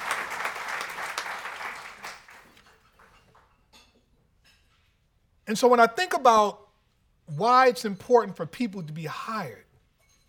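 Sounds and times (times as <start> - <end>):
audience applause: 0.0 - 3.1
speech: 5.5 - 6.6, 7.3 - 9.7.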